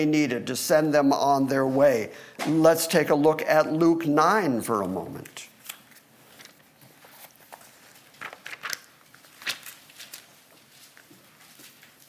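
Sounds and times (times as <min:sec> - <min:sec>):
speech: 0:00.0 - 0:05.5
thin bible paper pages turning: 0:05.2 - 0:12.0.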